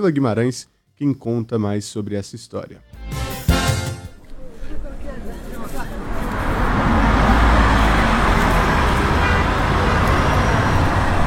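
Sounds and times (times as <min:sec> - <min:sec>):
speech: 0:00.0 - 0:03.1
diesel buses roaring through city traffic: 0:05.1 - 0:11.2.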